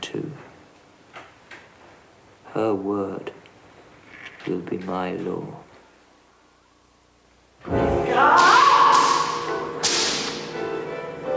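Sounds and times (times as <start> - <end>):
speech: 2.6 - 3.4, 4.4 - 5.7
whip cracking: 8.2 - 10.6.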